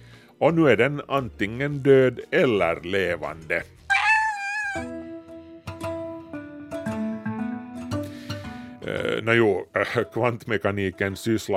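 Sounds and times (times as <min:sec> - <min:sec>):
speech: 0:00.4 - 0:03.8, 0:08.9 - 0:11.5
cat meowing: 0:03.9 - 0:05.0.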